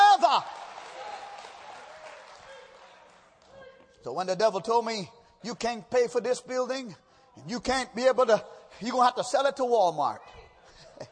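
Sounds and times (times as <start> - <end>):
audience clapping during a church service: 0.0 - 3.7
speech: 4.0 - 10.4
laughter: 10.2 - 11.0.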